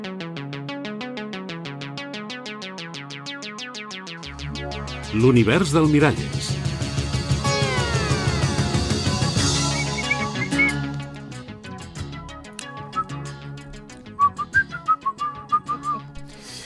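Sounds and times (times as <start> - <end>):
instrumental music: 4.0 - 16.6
speech: 4.6 - 6.6
person whistling a melodic tune: 9.6 - 10.8, 12.8 - 13.3, 14.2 - 16.2.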